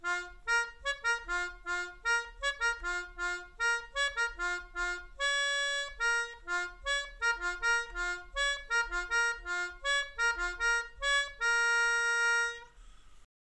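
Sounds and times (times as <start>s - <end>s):
melodica playing: 0.0s - 12.8s.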